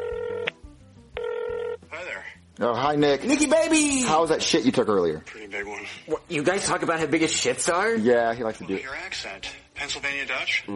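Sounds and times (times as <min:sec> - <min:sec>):
telephone ringing on an outgoing call: 0:00.0 - 0:00.5, 0:01.2 - 0:01.9
speech: 0:02.6 - 0:10.7.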